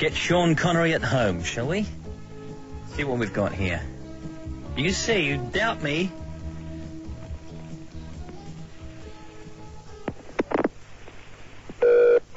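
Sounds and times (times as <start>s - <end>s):
speech: 0.0s - 2.0s, 3.0s - 3.9s, 4.8s - 6.2s
phone line ringback tone: 11.8s - 12.3s.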